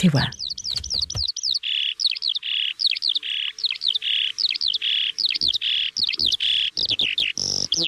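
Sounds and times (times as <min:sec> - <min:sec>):
speech: 0:00.0 - 0:00.4
Eurasian skylark singing: 0:00.0 - 0:07.8.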